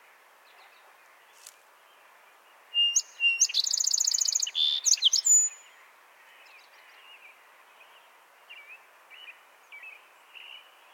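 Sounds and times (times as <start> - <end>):
song sparrow Melospiza melodia singing: 2.9 - 5.6.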